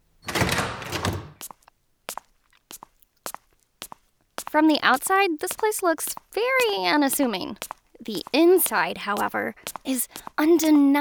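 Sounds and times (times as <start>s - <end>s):
heavy antique-looking double door of a downtown building scraping open: 0.2s - 1.4s
footsteps walking inside: 0.8s - 10.9s
speech: 4.5s - 10.9s.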